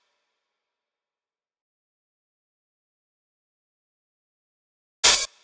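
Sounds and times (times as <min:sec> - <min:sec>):
open hi-hat in trap drums: 0:05.0 - 0:05.3.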